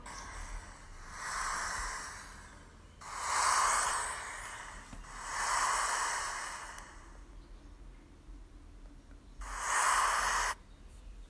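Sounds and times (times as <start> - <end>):
soft breathy hiss from a video game loading screen: 0.0 - 7.4, 9.4 - 11.2.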